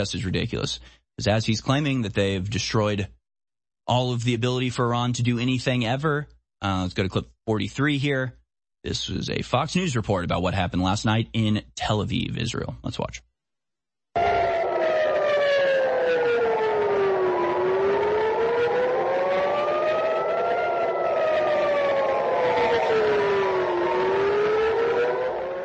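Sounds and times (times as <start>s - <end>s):
speech: 0.0s - 3.2s, 3.9s - 13.3s
air raid sirens wailing over a city: 14.2s - 25.6s.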